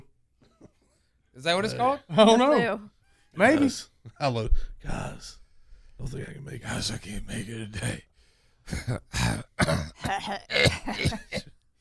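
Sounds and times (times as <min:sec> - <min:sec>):
speech: 0:01.4 - 0:05.4, 0:06.0 - 0:08.1, 0:08.7 - 0:11.5
person coughing harshly: 0:08.7 - 0:11.6.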